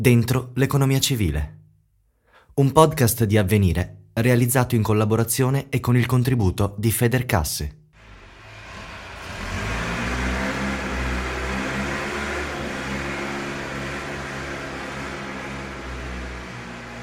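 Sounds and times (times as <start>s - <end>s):
speech: 0.0s - 1.6s, 2.6s - 7.8s
heavy diesel bulldozer engine moving earth at a construction site: 8.0s - 17.0s.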